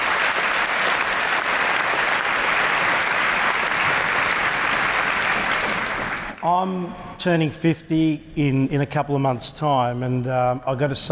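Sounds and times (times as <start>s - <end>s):
audience applause from a room full of people: 0.0s - 6.4s
speech: 6.4s - 11.1s.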